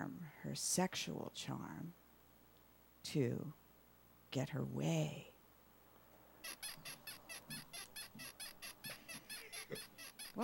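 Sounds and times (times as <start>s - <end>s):
speech: 0.0s - 2.0s, 3.0s - 3.6s, 4.3s - 5.3s
bed springs squeaking: 6.4s - 10.4s.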